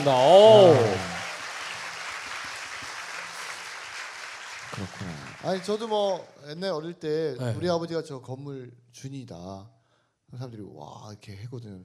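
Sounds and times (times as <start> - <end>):
speech: 0.0 - 1.1, 4.8 - 11.8
crowd clapping: 0.0 - 6.4.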